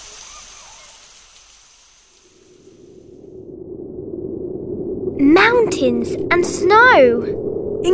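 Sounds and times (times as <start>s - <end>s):
rain falling: 0.0s - 3.2s
speech: 5.2s - 7.9s.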